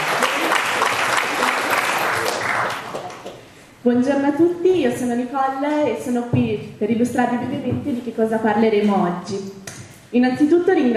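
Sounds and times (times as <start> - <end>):
audience applause for young students: 0.0 - 3.4
speech: 3.8 - 10.9.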